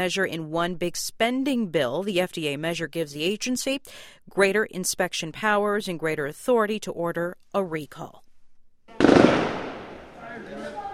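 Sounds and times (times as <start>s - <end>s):
speech: 0.0s - 8.2s
gunfire during riots: 8.9s - 10.2s.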